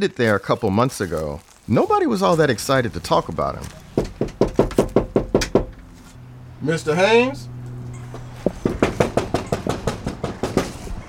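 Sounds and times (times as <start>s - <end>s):
speech: 0.0s - 3.8s, 6.6s - 7.5s
firm knocking on a front door: 4.0s - 5.8s, 8.4s - 10.8s.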